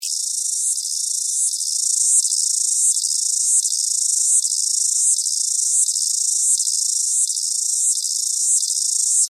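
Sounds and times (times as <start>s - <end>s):
New Zealand cicada species buzzing: 0.0s - 9.2s.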